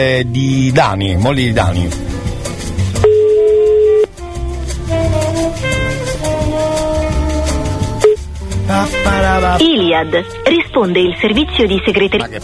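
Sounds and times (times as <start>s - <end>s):
speech: 0.0s - 2.1s, 8.7s - 12.4s
music: 0.0s - 12.4s
outgoing phone call ringback tone: 3.0s - 4.1s.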